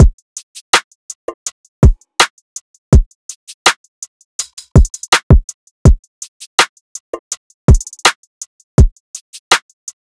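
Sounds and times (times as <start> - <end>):
drum loop at 82 BPM: 0.0 - 0.4, 1.2 - 2.3, 2.9 - 3.8, 4.4 - 8.1, 8.8 - 10.0.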